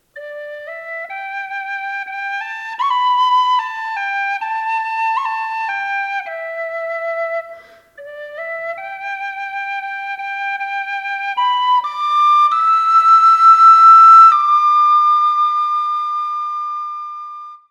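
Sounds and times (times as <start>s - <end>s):
whistle in D: 0.2s - 17.6s.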